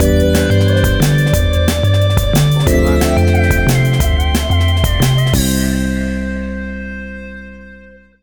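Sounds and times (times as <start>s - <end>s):
acoustic style drum and bass music stinger: 0.0s - 7.0s.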